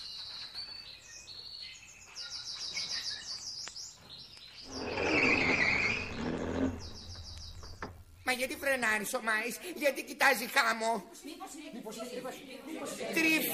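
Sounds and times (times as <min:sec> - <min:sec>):
flock of many small birds chirping while flying overhead: 0:00.0 - 0:08.2
speech: 0:08.4 - 0:13.5.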